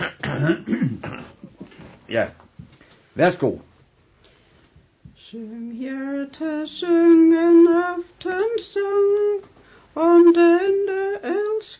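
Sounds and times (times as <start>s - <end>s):
raspy coughs: 0.0s - 1.6s
throat clearing: 0.0s - 1.6s
speech: 0.4s - 0.8s, 2.1s - 2.4s, 3.2s - 3.7s, 5.3s - 11.7s.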